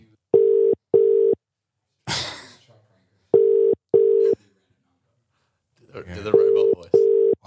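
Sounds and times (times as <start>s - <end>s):
electronic ringback tones from an outgoing phone call: 0.4s - 1.4s, 3.4s - 4.4s, 6.4s - 7.4s.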